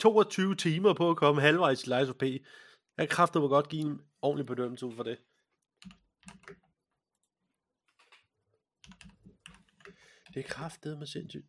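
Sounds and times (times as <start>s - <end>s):
speech: 0.0s - 6.6s, 10.3s - 11.4s
computer keyboard typing: 5.8s - 6.8s, 8.8s - 10.4s.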